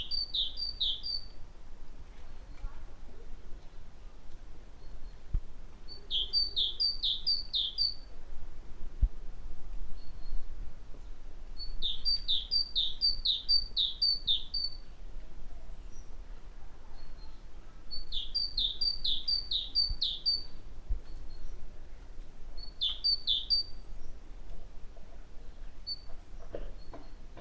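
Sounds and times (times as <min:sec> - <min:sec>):
great tit Parus major singing: 0:00.0 - 0:01.4, 0:04.8 - 0:08.1, 0:11.6 - 0:14.9, 0:16.9 - 0:21.6, 0:22.6 - 0:24.2, 0:25.5 - 0:27.3.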